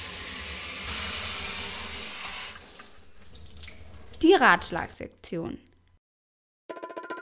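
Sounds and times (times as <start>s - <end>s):
shower water running: 0.0s - 5.0s
speech: 4.2s - 5.7s.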